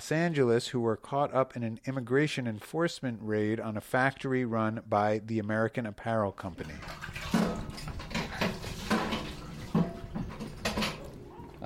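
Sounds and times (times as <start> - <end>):
speech: 0.0 - 7.2
empty bucket plunging into a barrel of water outside a small house: 6.6 - 11.2.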